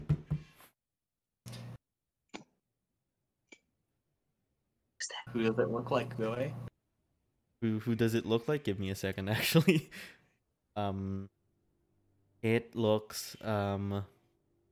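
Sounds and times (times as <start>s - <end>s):
knocking on a door: 0.0s - 0.5s
speech: 5.2s - 6.7s, 7.6s - 10.2s, 10.8s - 11.4s, 12.4s - 14.2s.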